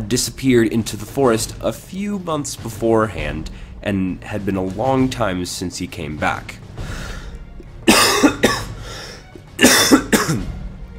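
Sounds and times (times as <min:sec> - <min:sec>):
speech: 0:00.1 - 0:07.0
harsh coughing: 0:07.9 - 0:10.5.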